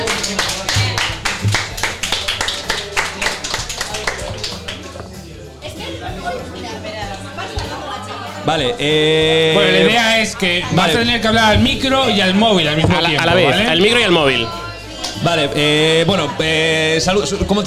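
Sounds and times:
live audience applause at an in-person show: 0:00.0 - 0:04.9
crowd chatter: 0:00.0 - 0:17.6
speech: 0:08.5 - 0:14.6, 0:15.2 - 0:17.6.

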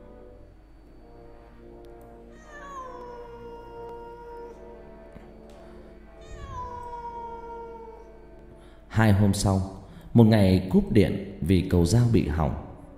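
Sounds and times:
cats yowling through the night: 0:02.3 - 0:05.4, 0:06.1 - 0:08.3
speech: 0:09.0 - 0:12.6.

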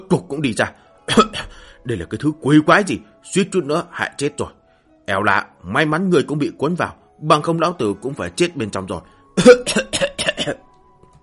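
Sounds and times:
speech: 0:00.1 - 0:10.6
dry coughs voiced by a narrator: 0:09.4 - 0:10.7.

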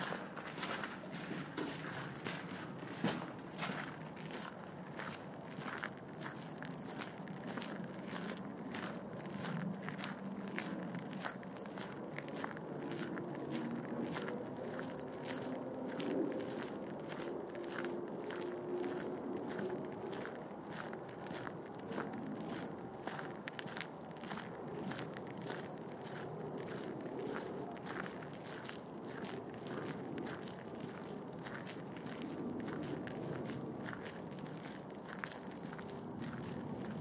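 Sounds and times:
footsteps walking through a rural entrance toward a chapel: 0:00.0 - 0:37.0.

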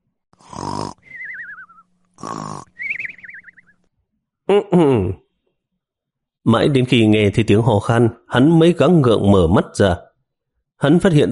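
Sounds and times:
person snoring deeply asleep slumped over a desk: 0:00.4 - 0:01.3, 0:02.2 - 0:02.8
speech: 0:02.2 - 0:02.7, 0:04.5 - 0:05.2, 0:06.5 - 0:10.0, 0:10.8 - 0:11.2.

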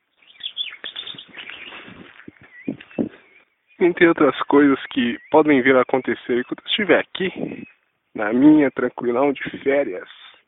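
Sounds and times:
small bird chirping and twittering in a rural setting: 0:00.0 - 0:07.9
speech: 0:03.8 - 0:10.2.

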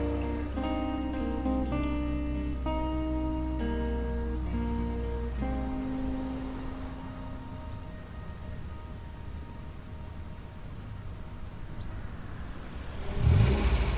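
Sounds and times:
white Mercedes car engine droning while driving between field hills: 0:00.0 - 0:13.9.

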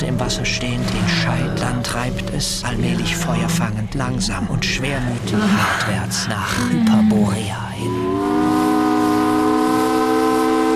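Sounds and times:
steamship siren hooting as a steamer sails into a bay: 0:00.0 - 0:03.8, 0:07.7 - 0:10.7
speech: 0:00.3 - 0:08.6.

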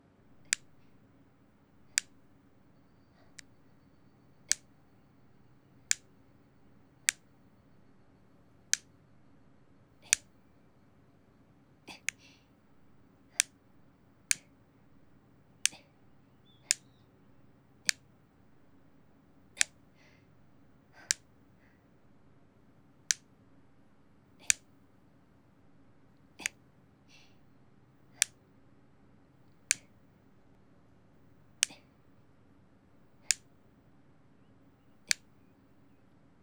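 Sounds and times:
faint hum: 0:00.0 - 0:36.4
nail clippers cutting a boy's hard fingernails: 0:10.0 - 0:10.3, 0:24.4 - 0:24.6, 0:31.6 - 0:31.8.

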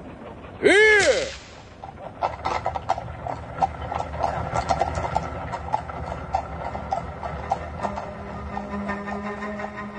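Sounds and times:
low steady rolling rumble of a horse-drawn carriage: 0:00.0 - 0:09.9
speech: 0:00.6 - 0:00.9
black horse-drawn carriage clip-clopping along at an unhurried pace: 0:01.3 - 0:09.9.

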